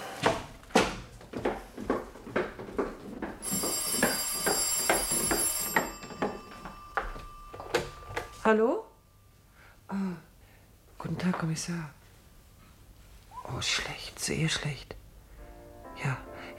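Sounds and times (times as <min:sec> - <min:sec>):
sharp knocks or footsteps: 0:00.0 - 0:08.4
telephone ringing in a home: 0:03.4 - 0:08.6
speech: 0:08.5 - 0:08.9, 0:09.9 - 0:10.2, 0:11.0 - 0:12.0, 0:13.5 - 0:15.0, 0:16.0 - 0:16.5.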